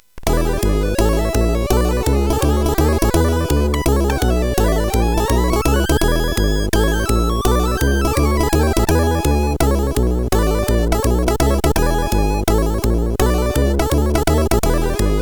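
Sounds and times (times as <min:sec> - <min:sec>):
modern jazz music on CSG8580R5: 0:00.4 - 0:14.3.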